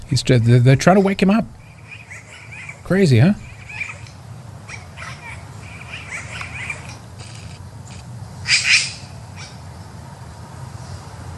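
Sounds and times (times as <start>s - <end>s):
low steady hum: 0.0s - 11.3s
speech: 0.1s - 1.6s, 2.9s - 3.4s
harsh raspy corvid call played from a video: 1.6s - 9.6s.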